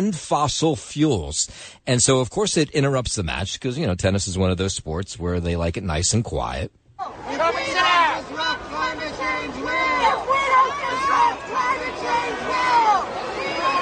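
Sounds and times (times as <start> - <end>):
speech: 0.0 - 9.8
large tennis stadium crowd booing and jeering at climate protesters: 7.0 - 13.8.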